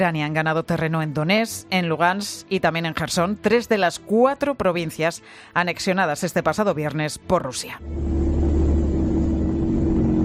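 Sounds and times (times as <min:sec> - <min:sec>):
speech: 0:00.0 - 0:08.4
military vehicle engines rumbling while advancing toward Kharkiv: 0:07.8 - 0:10.2.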